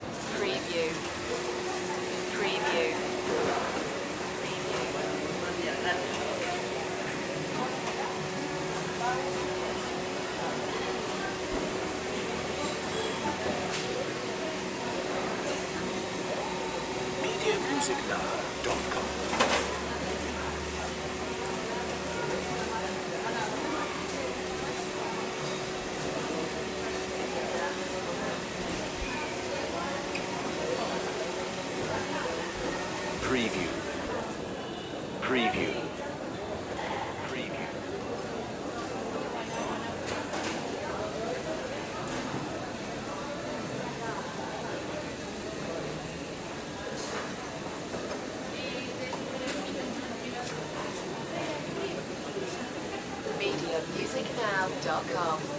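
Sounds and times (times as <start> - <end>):
indoor market ambience in Colombia: 0.0 - 55.5.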